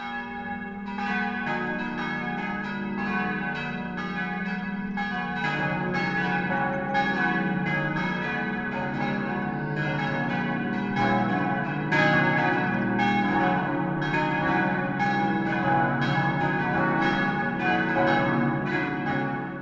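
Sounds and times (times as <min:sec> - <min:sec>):
church bells ringing the noon peal: 0:00.0 - 0:19.6.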